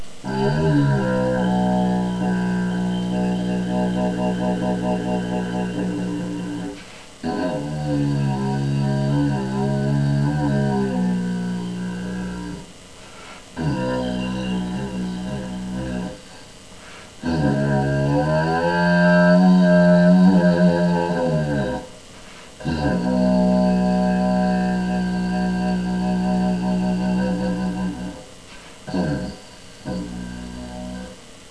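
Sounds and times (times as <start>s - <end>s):
PVC didgeridoo: 0.2s - 12.7s, 13.6s - 16.3s, 17.2s - 21.9s, 22.6s - 31.2s.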